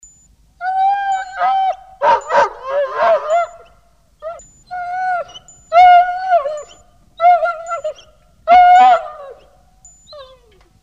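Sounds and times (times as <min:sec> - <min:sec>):
dog whining yelps: 0:00.6 - 0:10.6
dog barking: 0:02.0 - 0:03.4.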